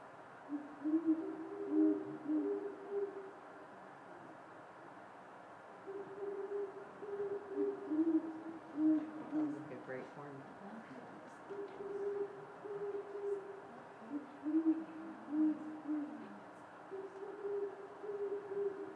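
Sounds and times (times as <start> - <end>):
faint steady hiss: 0.0 - 18.9
great horned owls hooting: 0.5 - 3.4, 5.8 - 10.0, 11.5 - 18.9.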